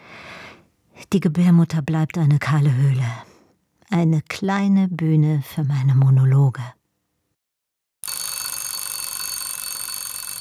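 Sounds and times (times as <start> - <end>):
speech: 1.1 - 3.3, 3.9 - 6.8
alarm clock with metallic bell ringing: 8.0 - 10.3.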